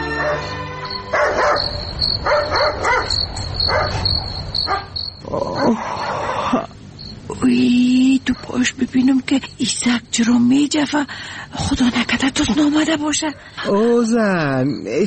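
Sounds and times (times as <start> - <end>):
dog barking at night: 0.2 - 0.5, 1.1 - 5.0
cricket chorus trilling at night: 0.4 - 11.4
speech: 5.3 - 6.7, 7.4 - 15.0.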